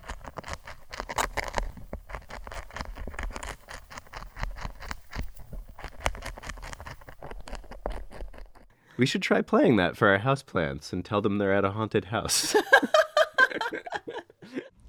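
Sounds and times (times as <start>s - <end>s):
vibration recording of a caterpillar chewing a leaf: 0.0s - 8.7s
speech: 9.0s - 13.0s
laughter: 12.3s - 14.7s.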